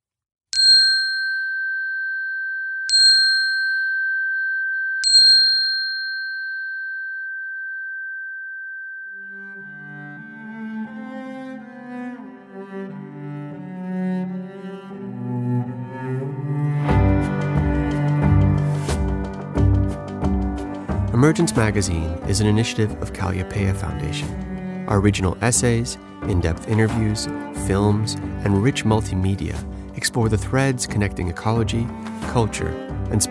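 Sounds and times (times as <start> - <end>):
chime strikes: 0.6 - 10.3
soft instrumental theme music: 9.1 - 33.2
speech: 21.4 - 33.2.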